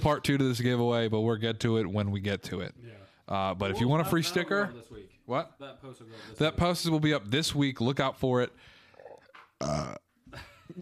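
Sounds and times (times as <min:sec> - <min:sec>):
speech: 0:00.0 - 0:08.7, 0:09.6 - 0:10.7
throaty vocal noises: 0:08.8 - 0:10.1
loud burp: 0:09.0 - 0:10.1.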